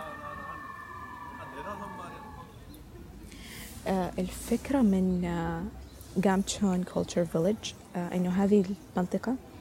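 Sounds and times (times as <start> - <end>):
ambulance siren wailing: 0.0 - 2.6
noisy street-like backdrop: 0.0 - 9.5
speech: 3.8 - 9.5.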